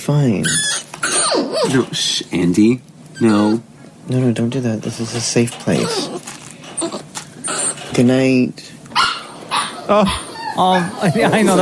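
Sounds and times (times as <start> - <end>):
speech: 0.0 - 6.3, 8.0 - 8.8, 9.9 - 11.6
dog left alone in a room barking: 9.0 - 10.4.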